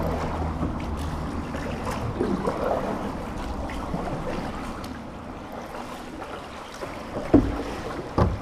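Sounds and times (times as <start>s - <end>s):
water lapping softly around a drifting boat hull on a swollen river: 0.0s - 8.3s
gentle knock: 7.2s - 8.3s.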